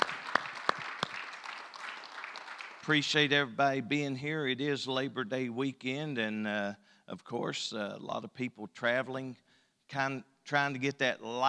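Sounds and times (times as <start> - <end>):
audience applauding with hand claps in a reverberant room: 0.0 - 3.2
speech: 2.9 - 11.4.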